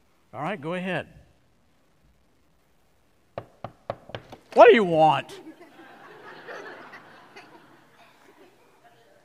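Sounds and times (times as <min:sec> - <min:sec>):
speech: 0:00.4 - 0:01.2, 0:04.6 - 0:05.4
knocking on a door: 0:03.4 - 0:04.4
laughter: 0:05.3 - 0:09.2.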